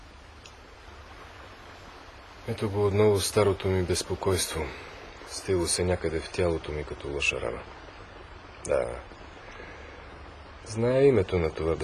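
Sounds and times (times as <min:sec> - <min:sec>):
steady rain: 0:00.0 - 0:11.8
speech: 0:02.4 - 0:04.9, 0:05.5 - 0:07.8, 0:08.6 - 0:09.2, 0:10.7 - 0:11.8.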